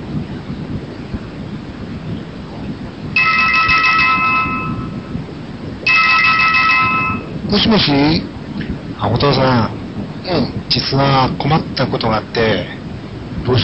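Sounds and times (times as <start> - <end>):
steady rumbling rain-like noise: 0.0 - 4.0, 4.6 - 6.6, 7.2 - 13.6
telephone ringing in electronic bursts: 3.2 - 5.1, 5.9 - 7.3
speech: 7.5 - 8.4, 9.0 - 12.8, 13.4 - 13.6.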